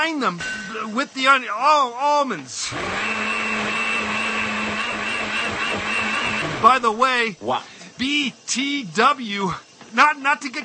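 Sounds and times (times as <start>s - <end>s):
speech: 0.0s - 3.5s, 6.6s - 10.6s
blender running: 2.6s - 6.9s.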